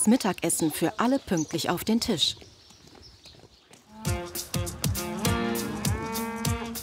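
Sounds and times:
speech: 0.0 - 2.5
calves mooing on a farm: 3.9 - 6.8.

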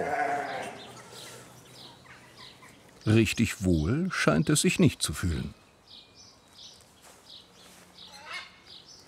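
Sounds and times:
sheep bleating while held in a headlock for blood sampling: 0.0 - 0.8
faint outdoor rustle: 0.0 - 3.2, 5.7 - 9.0
speech: 3.0 - 5.6.

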